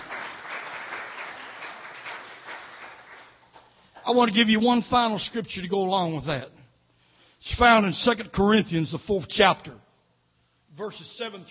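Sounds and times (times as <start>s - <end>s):
large crowd clapping and applauding: 0.0s - 4.4s
speech: 4.1s - 6.6s, 7.4s - 9.8s, 10.8s - 11.4s.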